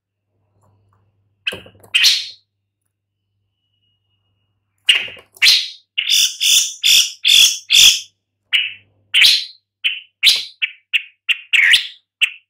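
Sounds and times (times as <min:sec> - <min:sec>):
Long-tailed shrike Lanius schach uttering grating squawks: 0:04.9 - 0:12.4.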